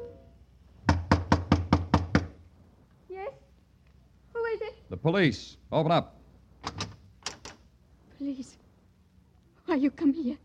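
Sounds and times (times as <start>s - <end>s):
firm knocking on a door: 0.8s - 2.4s
speech: 4.9s - 6.9s, 8.2s - 8.6s, 9.7s - 10.4s.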